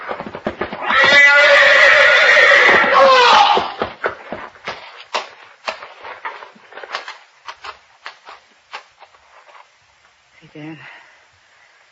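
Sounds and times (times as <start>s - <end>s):
horse hooves thumping and stamping: 0.0s - 10.2s
horse neighing: 0.7s - 3.9s.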